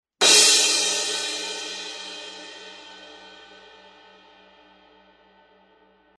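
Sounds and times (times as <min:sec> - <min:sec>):
18-inch explosion crash cymbal: 0:00.2 - 0:05.9.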